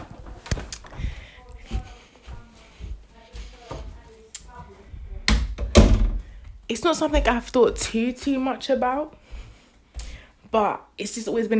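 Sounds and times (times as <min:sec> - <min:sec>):
sharp knocks on a door: 0:05.2 - 0:06.3
door closing with a loud thud and rattle: 0:05.3 - 0:06.4
speech: 0:06.7 - 0:09.2, 0:10.5 - 0:11.5.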